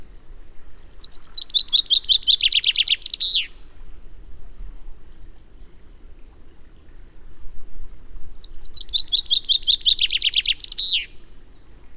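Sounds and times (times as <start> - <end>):
common chaffinch Fringilla coelebs singing: 0.8 - 3.6, 8.2 - 11.3.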